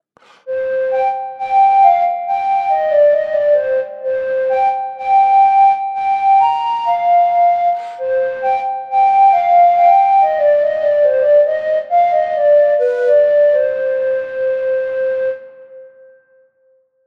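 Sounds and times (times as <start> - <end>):
pan flute: 0.2 - 16.5.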